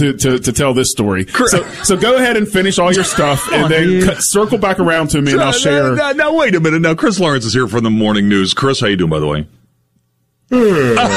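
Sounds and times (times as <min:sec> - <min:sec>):
speech: 0:00.0 - 0:09.6, 0:10.5 - 0:11.1
laughter: 0:01.3 - 0:06.0, 0:10.6 - 0:11.1
person yawning: 0:10.5 - 0:11.1.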